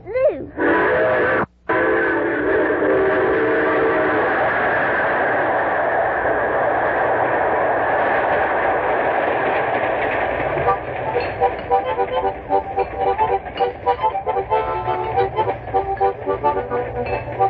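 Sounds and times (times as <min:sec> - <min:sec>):
passing train with loud continuous rumble and clatter of cars: 0:00.0 - 0:17.4
train whistle sounding steady tones: 0:00.5 - 0:06.4, 0:10.6 - 0:17.4.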